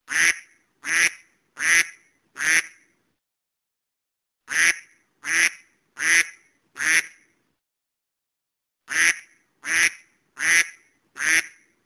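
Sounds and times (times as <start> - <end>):
duck: 0.1 - 2.9, 4.5 - 7.3, 8.9 - 11.7.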